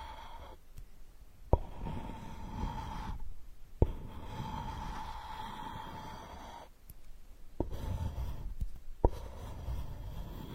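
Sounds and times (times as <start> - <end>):
faint steady whine: 0.0 - 10.5
muffled ear digging with a straw: 1.5 - 6.8, 7.6 - 10.5.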